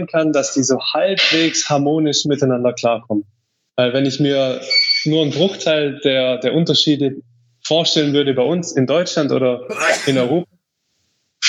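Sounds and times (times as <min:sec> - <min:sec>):
speech: 0:00.0 - 0:10.5
single sharp loud sneeze: 0:09.7 - 0:10.4.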